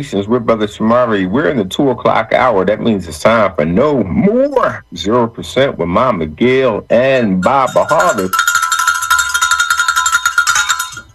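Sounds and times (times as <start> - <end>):
speech: 0.0 - 8.6
bell rung rapidly with bright metallic clangs: 7.4 - 11.1.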